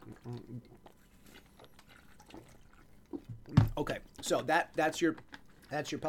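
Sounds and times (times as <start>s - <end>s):
person drinking water: 0.0s - 4.4s
faint gulping or sipping: 0.0s - 5.8s
speech: 3.8s - 6.0s.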